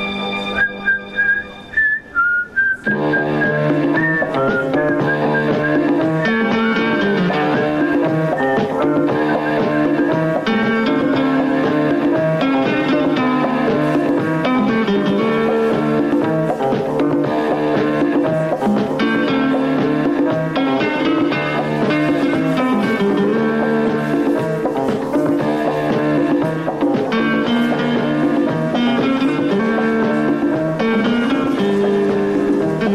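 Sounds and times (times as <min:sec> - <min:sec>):
bright whistled melody of a TV series theme tune: 0:00.0 - 0:11.2
full band playing an instrumental TV series theme tune: 0:00.0 - 0:32.9.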